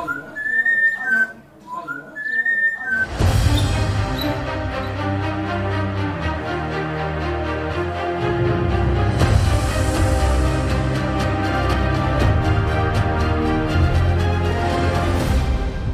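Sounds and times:
parrot whistling after drinking red wine: 0:00.0 - 0:04.4
loud full-band music: 0:03.2 - 0:15.9.

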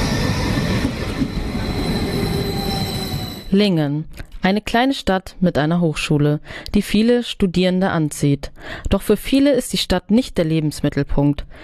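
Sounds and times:
regional express train wheels rumbling while pulling into a station: 0:00.0 - 0:03.6
thin high-pitched squealing tones of a train: 0:00.0 - 0:03.6
speech: 0:03.5 - 0:11.6.

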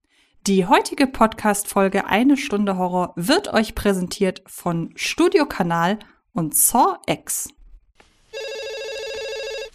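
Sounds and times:
speech: 0:00.5 - 0:07.6
telephone ringing with electronic trill: 0:08.3 - 0:09.7.

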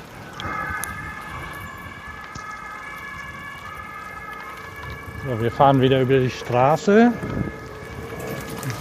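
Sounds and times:
emergency vehicle siren passing: 0:00.0 - 0:08.7
low rumble of street traffic: 0:00.0 - 0:08.7
speech: 0:05.2 - 0:07.5.

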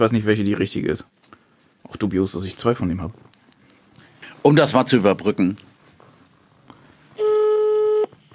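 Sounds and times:
speech: 0:00.0 - 0:01.2, 0:01.9 - 0:03.3, 0:04.4 - 0:05.7
telephone ringback tone while calling: 0:07.2 - 0:08.3.

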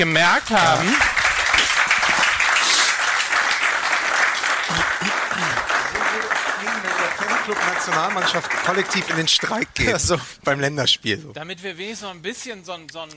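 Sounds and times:
speech: 0:00.0 - 0:01.2, 0:04.7 - 0:05.5, 0:06.2 - 0:13.1
studio audience clapping: 0:00.0 - 0:10.0.

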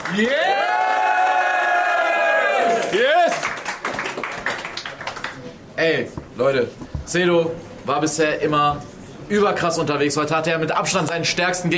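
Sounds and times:
crowd cheering and shouting after a battle: 0:00.0 - 0:03.4
speech: 0:00.1 - 0:00.6, 0:05.8 - 0:11.7.

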